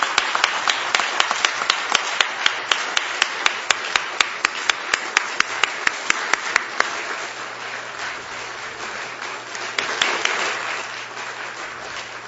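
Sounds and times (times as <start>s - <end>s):
sharp individual claps: 0.0s - 12.1s
crowd applauding: 0.0s - 12.2s.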